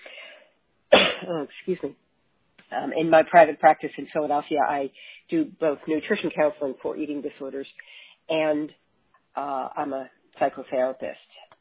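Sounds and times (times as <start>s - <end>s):
sharp cough: 0.9s - 1.4s
speech: 1.2s - 2.0s, 2.7s - 8.8s, 9.4s - 11.4s.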